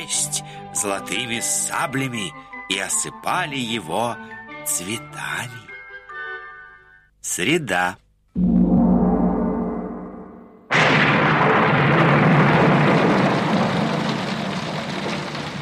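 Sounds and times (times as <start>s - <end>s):
speech: 0.0s - 5.7s, 7.4s - 8.5s
low deep rumble: 8.4s - 11.7s
heavy rain pouring: 10.8s - 15.5s.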